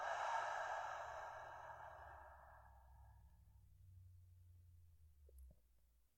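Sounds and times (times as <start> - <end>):
deep breath in: 0.0 - 3.1
long slow exhale during a breathing exercise: 0.0 - 3.1.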